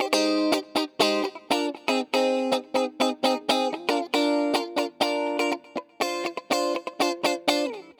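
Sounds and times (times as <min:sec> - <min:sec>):
guitar: 0:00.0 - 0:07.9.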